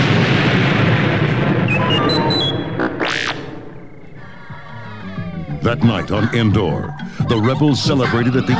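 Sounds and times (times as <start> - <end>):
chain of rumbling explosions: 0.0 - 5.4
high whistling sweeping electronic tones: 1.7 - 5.8
speech: 5.6 - 8.5.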